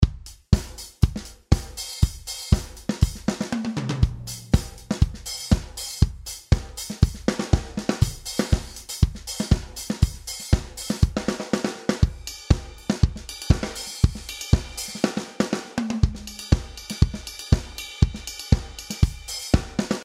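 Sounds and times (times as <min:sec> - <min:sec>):
drum beat with hi-hat fills: 0:00.0 - 0:20.0.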